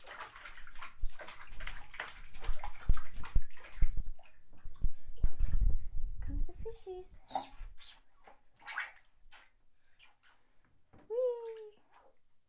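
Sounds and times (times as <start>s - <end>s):
water splashing and sloshing in a bathtub as a young boy splashes: 0.0s - 5.9s, 6.9s - 12.4s
young boy making short high vocal sounds: 11.1s - 11.8s.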